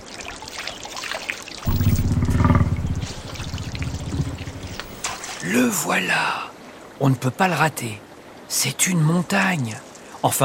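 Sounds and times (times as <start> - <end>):
river water lapping and trickling: 0.0 - 10.4
deep throaty gurgling rumble: 1.7 - 5.2
speech: 5.5 - 10.4.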